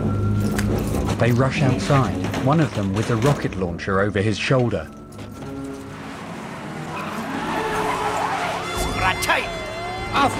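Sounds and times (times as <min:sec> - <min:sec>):
dense noisy street background: 0:00.0 - 0:10.3
speech: 0:01.2 - 0:05.0
police car siren: 0:05.1 - 0:10.3.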